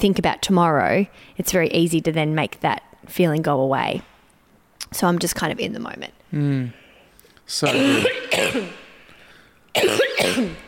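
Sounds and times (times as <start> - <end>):
speech: 0.0 - 4.1, 4.8 - 6.8, 7.5 - 8.8, 9.7 - 10.6
person coughing: 7.6 - 9.0, 9.7 - 10.6.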